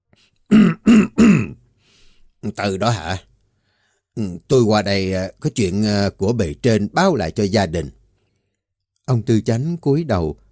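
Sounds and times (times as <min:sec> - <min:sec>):
speech: 0:00.2 - 0:01.2, 0:02.6 - 0:03.3, 0:04.2 - 0:08.0, 0:09.1 - 0:10.4
plump village chief clearing his throat: 0:00.5 - 0:01.6.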